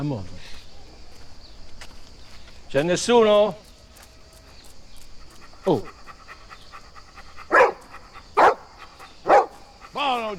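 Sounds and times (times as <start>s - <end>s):
speech: 0.0s - 0.4s, 2.7s - 3.6s, 5.6s - 6.0s
dog barking: 5.7s - 10.3s.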